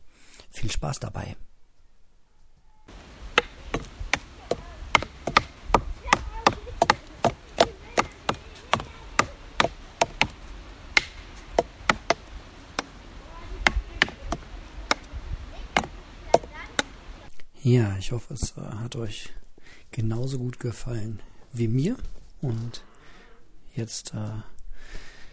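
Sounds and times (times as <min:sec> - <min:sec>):
speech: 0:00.6 - 0:01.5, 0:17.7 - 0:19.4, 0:20.0 - 0:22.9, 0:23.8 - 0:25.0
boy playing a wooden drum: 0:02.9 - 0:13.0, 0:13.6 - 0:15.1, 0:15.8 - 0:17.0.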